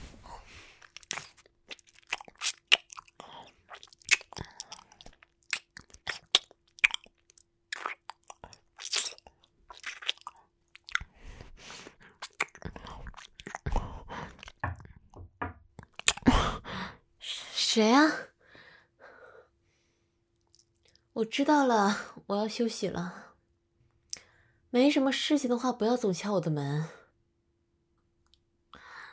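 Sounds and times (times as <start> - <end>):
crunchy chewing and biting of food: 0.5 - 13.7
speech: 17.8 - 18.3, 21.2 - 23.2, 24.7 - 27.0.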